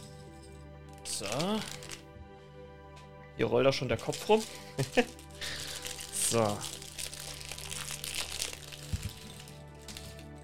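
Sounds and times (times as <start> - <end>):
packaging crinkling as parts are unpacked: 1.0 - 2.1, 4.0 - 10.4
speech: 1.1 - 1.9, 3.4 - 5.5, 6.3 - 6.8.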